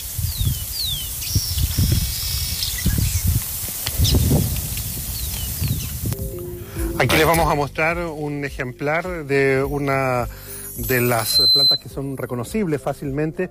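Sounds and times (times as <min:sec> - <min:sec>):
small birds chirping: 0:00.0 - 0:06.2
desert wind rushing and gusting across open ground: 0:00.1 - 0:07.2
speech: 0:07.0 - 0:13.4.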